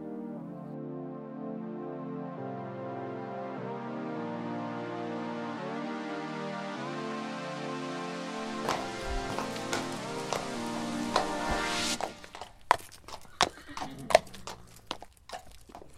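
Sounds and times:
sustained tonal music: 0.0 - 12.8
horse walking with hooves clip-clopping on a hard surface: 8.4 - 15.9.

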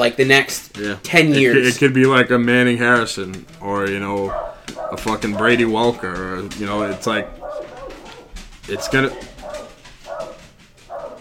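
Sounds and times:
speech: 0.0 - 7.4, 8.7 - 9.3
dog barks: 4.1 - 11.1.

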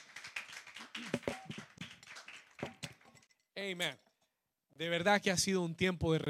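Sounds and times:
audience applauding: 0.0 - 3.0
speech: 3.6 - 4.0, 4.8 - 6.2.

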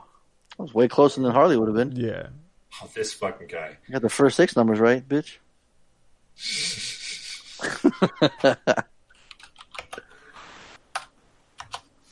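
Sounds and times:
speech: 0.6 - 5.4, 6.4 - 6.9, 7.6 - 8.9
laughter: 6.4 - 8.8
typing on a computer keyboard: 9.2 - 10.0, 10.9 - 11.9.

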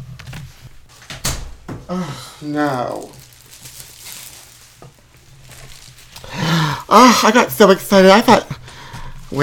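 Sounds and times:
low steady hum: 0.0 - 9.4
door shutting thud: 1.1 - 1.9
speech: 1.9 - 3.2, 6.9 - 8.6.

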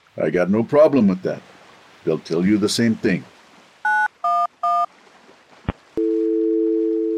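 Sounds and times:
speech: 0.2 - 3.4
phone keypad dialing beeps: 3.9 - 4.9
steady unbroken phone tone of a failed call: 3.9 - 4.9, 6.0 - 7.1.

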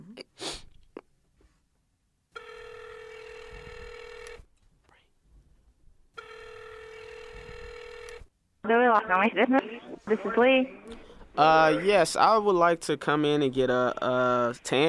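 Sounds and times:
phone dialing clicks and beeps: 2.4 - 4.4, 6.2 - 8.3
speech: 8.7 - 14.8.

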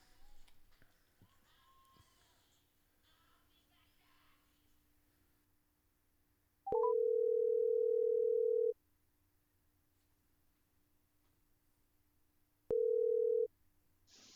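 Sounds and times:
phone ringback tone from an outgoing phone call: 6.7 - 8.8, 12.7 - 13.5.

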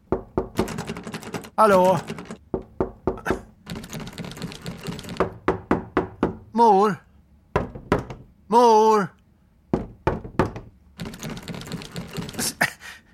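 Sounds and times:
loud rattling of a stuck door: 0.0 - 6.5, 7.5 - 8.4, 9.7 - 12.4
banging on a stuck door: 0.1 - 6.5, 7.5 - 8.3, 9.7 - 11.3
person calling out: 1.6 - 2.2, 6.5 - 7.1, 8.5 - 9.2
speech: 1.6 - 2.2, 6.6 - 7.0, 8.5 - 9.2.

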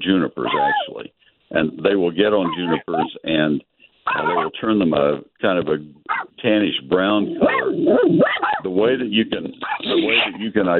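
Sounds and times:
speech: 0.0 - 10.7
dogs barking and yelping outside a car: 0.4 - 1.0, 2.4 - 3.2, 4.1 - 4.6, 6.0 - 6.3, 7.4 - 8.7, 9.6 - 10.7.

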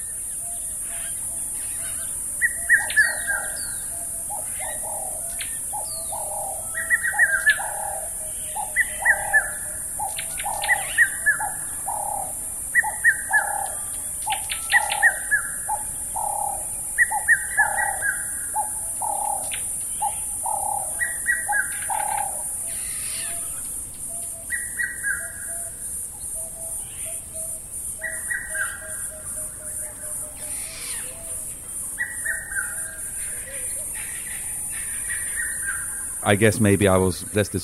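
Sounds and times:
bird calls with cooing notes and chirps: 0.0 - 37.6
speech: 36.3 - 37.6.

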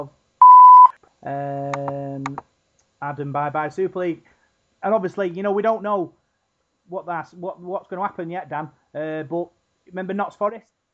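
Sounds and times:
short loud pure censor bleep: 0.4 - 0.9
speech: 1.2 - 6.2, 6.9 - 10.9.

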